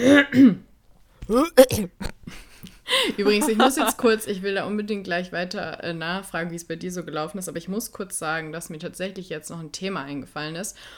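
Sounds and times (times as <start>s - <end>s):
speech: 0.0s - 0.6s, 1.3s - 10.9s
person clearing throat: 0.0s - 2.4s, 3.3s - 3.9s
laughter: 3.0s - 4.1s.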